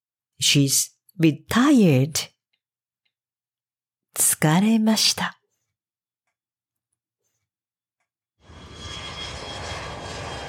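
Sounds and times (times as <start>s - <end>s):
speech: 0.4s - 2.3s, 4.2s - 5.4s
airplane engine roaring with a faint whining tone: 8.4s - 10.4s.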